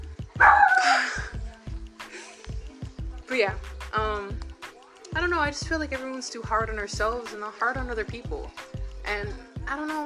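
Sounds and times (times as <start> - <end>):
dog barking: 0.4 - 1.1
speech: 3.4 - 4.4, 5.2 - 10.0.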